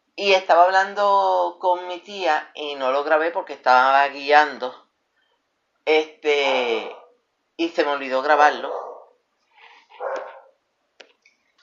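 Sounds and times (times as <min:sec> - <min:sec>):
speech: 0:00.2 - 0:04.8, 0:05.8 - 0:07.0, 0:07.6 - 0:08.8
female dogs barking and yelping: 0:08.8 - 0:09.2, 0:09.9 - 0:10.6.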